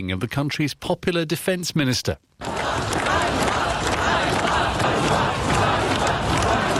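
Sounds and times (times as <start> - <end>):
speech: 0.0 - 3.4
crowd of protesters shouting together in Kyiv: 2.4 - 6.7.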